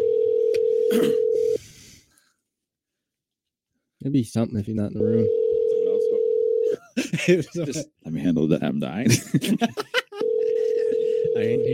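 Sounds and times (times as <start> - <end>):
electronic ringback tone on a phone line: 0.0 - 1.6, 5.0 - 6.8, 10.2 - 11.7
speech: 0.9 - 1.2, 4.0 - 5.4, 7.2 - 9.9, 11.4 - 11.7
laughter: 6.6 - 7.8, 9.0 - 11.7.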